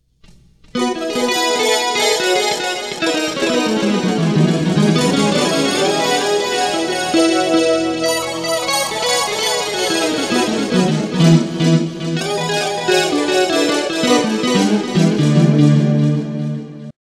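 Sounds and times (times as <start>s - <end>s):
slow gear guitar through Boss GT-8 effects processor: 0.8s - 16.9s.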